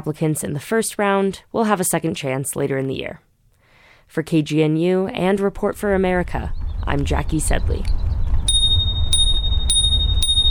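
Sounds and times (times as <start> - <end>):
speech: 0.0 - 3.3, 4.1 - 8.0
low rumble: 5.1 - 10.4
small bell ringing: 8.5 - 10.4.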